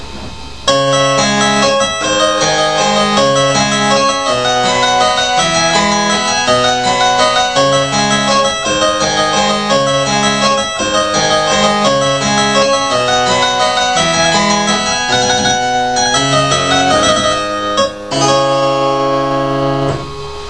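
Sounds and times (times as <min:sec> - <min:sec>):
harpsichord: 0:00.7 - 0:20.4.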